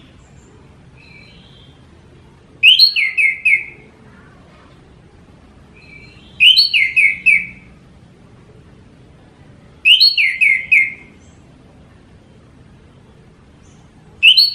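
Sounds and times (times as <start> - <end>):
orange-headed thrush singing downslurred whistled notes: 2.6 - 3.8, 5.8 - 7.7, 9.8 - 11.2, 14.2 - 14.5.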